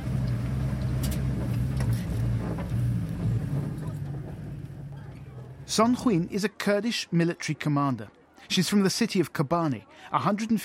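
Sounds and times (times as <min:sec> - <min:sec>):
homemade armored truck engine droning: 0:00.0 - 0:05.9
rattling and clanks inside homemade armored truck: 0:00.3 - 0:05.7
speech: 0:05.7 - 0:10.6.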